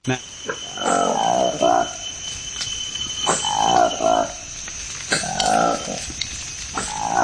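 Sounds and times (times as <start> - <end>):
insects humming in the forest: 0.0 - 7.2
Lesula monkey calling in low throaty hoots in the Democratic Republic of the Congo: 0.1 - 2.2, 3.1 - 6.1, 6.7 - 7.2.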